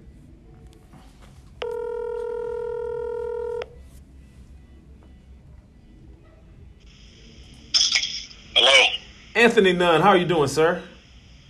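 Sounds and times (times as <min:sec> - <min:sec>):
electronic telephone keypad dialing tone: 0:01.6 - 0:03.8
speech: 0:09.4 - 0:10.9.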